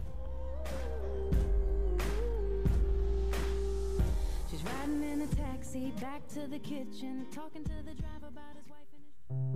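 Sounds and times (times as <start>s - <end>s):
outro song with heavy bass, gliding melodic line and percussive hits: 0.0s - 5.8s
speech: 5.7s - 9.4s.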